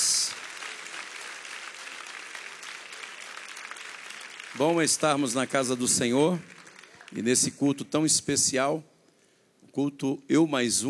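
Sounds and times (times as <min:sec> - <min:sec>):
room full of people clapping together: 0:00.0 - 0:07.5
speech: 0:04.6 - 0:08.9, 0:09.8 - 0:10.8.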